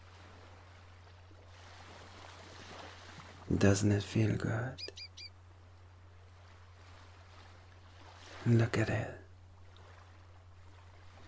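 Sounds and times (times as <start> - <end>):
soft waves breaking on shore: 0.0 - 11.2
speech: 3.5 - 5.0, 8.5 - 9.2
faint bird chirps: 4.8 - 5.4.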